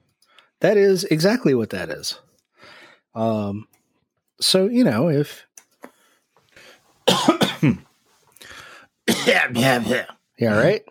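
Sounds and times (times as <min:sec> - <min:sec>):
speech: 0:00.6 - 0:02.3, 0:03.2 - 0:03.7, 0:04.4 - 0:05.5, 0:07.1 - 0:07.9, 0:09.2 - 0:10.8
person coughing harshly: 0:07.1 - 0:07.9, 0:09.1 - 0:10.2.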